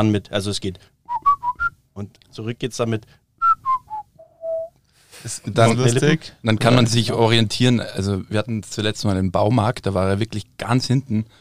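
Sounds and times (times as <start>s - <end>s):
speech: 0.0s - 1.0s, 2.0s - 3.2s, 5.2s - 11.3s
family signal whistle whistled by mouth: 3.4s - 4.7s.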